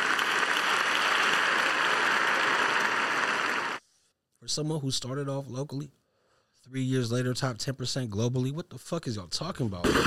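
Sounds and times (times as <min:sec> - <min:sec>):
crowd applauding: 0:00.0 - 0:03.8
speech: 0:04.4 - 0:06.0, 0:06.7 - 0:10.0.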